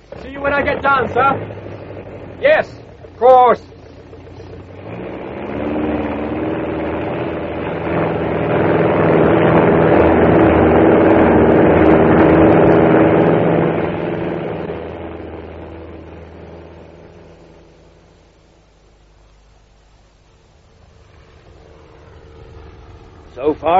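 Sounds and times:
propeller aircraft engine starting and plane taking off: 0:00.0 - 0:23.7
speech: 0:00.4 - 0:01.6, 0:02.4 - 0:03.7.

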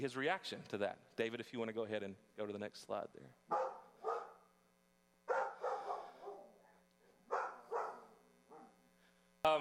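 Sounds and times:
speech: 0:00.0 - 0:03.6
German Shepherd barking at stuffed toy tiger: 0:03.5 - 0:04.5, 0:05.3 - 0:06.6, 0:07.3 - 0:08.8.

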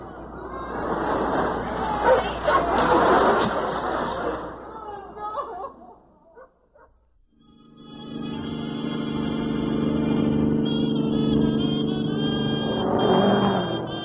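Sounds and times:
laughter: 0:00.1 - 0:06.9
car engine roaring while driving fast: 0:07.6 - 0:14.0.

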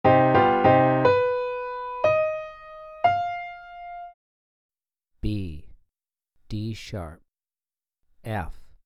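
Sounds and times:
three-note melodic piano phrase in B minor for ear training: 0:00.0 - 0:04.2.

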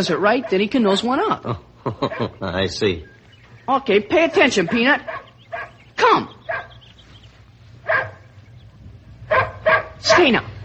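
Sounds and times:
speech: 0:00.0 - 0:03.1, 0:03.7 - 0:05.2, 0:06.0 - 0:06.4, 0:10.2 - 0:10.6
dog barking during obedience training: 0:00.2 - 0:00.8, 0:02.0 - 0:02.4, 0:04.6 - 0:06.9, 0:07.8 - 0:08.4, 0:09.3 - 0:10.6
laughter: 0:01.4 - 0:02.9
low steady rumble: 0:03.0 - 0:10.6.

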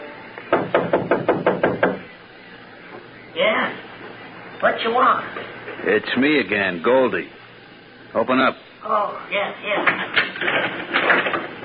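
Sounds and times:
firm knocking on a door: 0:00.5 - 0:02.1
speech: 0:04.7 - 0:07.4, 0:08.1 - 0:11.6.

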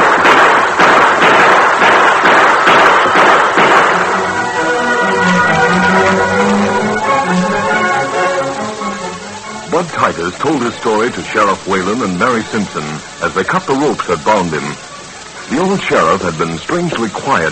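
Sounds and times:
gunshots in a Western shootout: 0:00.0 - 0:06.6
sustained tonal sound: 0:03.9 - 0:11.8
speech: 0:10.2 - 0:14.9, 0:15.5 - 0:17.5.

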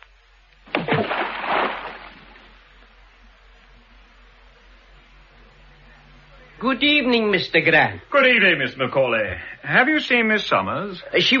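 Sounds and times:
object thrown into water splashing: 0:00.6 - 0:02.6
speech: 0:06.6 - 0:11.3.

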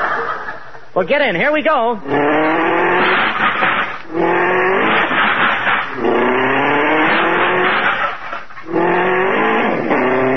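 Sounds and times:
laughter: 0:00.0 - 0:01.0
speech: 0:01.0 - 0:04.3
hot rod tires squealing and skidding: 0:02.0 - 0:10.3
old hot rod engine revving hard: 0:02.0 - 0:10.3.

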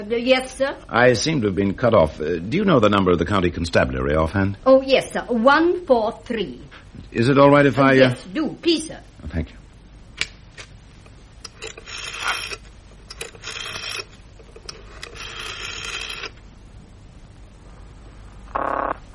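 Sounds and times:
speech: 0:00.0 - 0:09.6
telephone ringing tone calling the county constabulary: 0:11.6 - 0:12.6, 0:13.2 - 0:16.4, 0:18.5 - 0:19.1.

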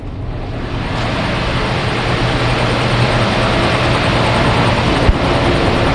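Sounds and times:
air compressor running in mechanical room: 0:00.2 - 0:05.9.

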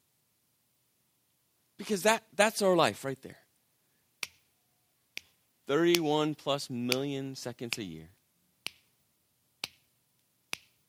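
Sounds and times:
speech: 0:01.8 - 0:03.4, 0:05.7 - 0:08.2
crisp finger snaps: 0:04.2 - 0:04.4, 0:05.1 - 0:06.1, 0:08.6 - 0:08.9, 0:09.6 - 0:09.9, 0:10.5 - 0:10.8.

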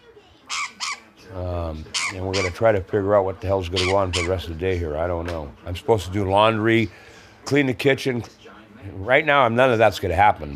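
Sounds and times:
pet bird clucking: 0:00.5 - 0:02.7, 0:03.7 - 0:04.5
speech: 0:01.3 - 0:10.5.

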